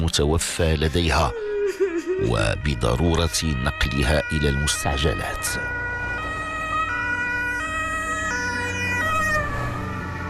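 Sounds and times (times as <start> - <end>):
speech: 0.1 - 5.8
ambulance siren wailing in two-tone bursts: 0.6 - 10.2
low rumble of road traffic: 2.4 - 10.2.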